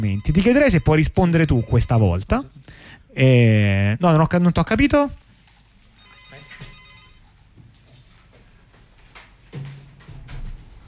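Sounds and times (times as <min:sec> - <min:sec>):
telephone ringing with incoming listener call to a radio talk show: 0:00.0 - 0:02.3, 0:06.0 - 0:07.3
speech: 0:00.0 - 0:05.2
room noise: 0:00.0 - 0:10.8.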